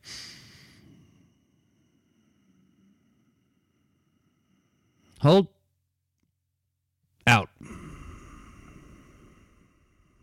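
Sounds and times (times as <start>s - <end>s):
slow deep inhalation through the nose or mouth: 0.0s - 5.2s, 7.6s - 10.2s
speech: 5.2s - 5.6s.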